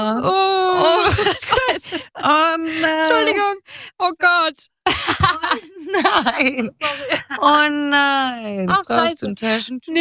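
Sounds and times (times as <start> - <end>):
speech: 0.0 - 0.4, 1.3 - 10.0
woman crying in a wailing sob: 0.0 - 3.7, 4.9 - 7.6.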